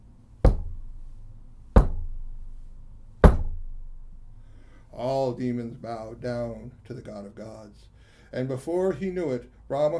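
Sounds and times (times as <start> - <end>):
heavy knocks on a door of gold: 0.4 - 1.0, 1.8 - 2.4, 3.2 - 3.9
speech: 5.0 - 9.9.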